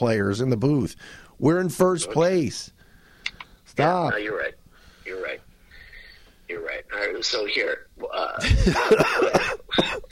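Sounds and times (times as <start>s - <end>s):
speech: 0.0s - 2.8s, 3.8s - 4.6s, 6.5s - 10.0s
harsh raspy throaty cough: 8.4s - 10.0s.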